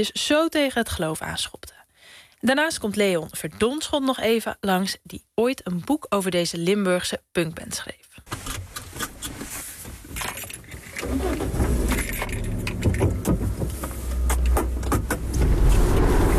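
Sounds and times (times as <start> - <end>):
speech: 0.0 - 8.4
small car engine and road rumble: 8.3 - 16.3.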